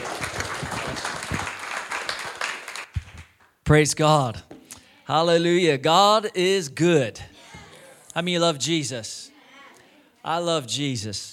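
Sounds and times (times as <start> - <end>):
church audience applauding: 0.0 - 3.6
speech: 3.7 - 4.5, 5.1 - 7.2, 8.2 - 9.1, 10.2 - 11.3.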